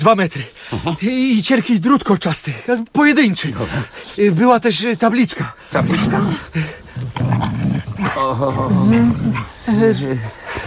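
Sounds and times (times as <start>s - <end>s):
speech: 0.0s - 10.4s
dog growling: 5.7s - 10.6s.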